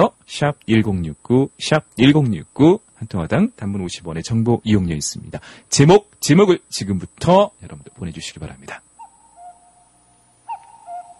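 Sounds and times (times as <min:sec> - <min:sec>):
speech: 0:00.0 - 0:08.9
cuckoo calling: 0:09.0 - 0:11.1.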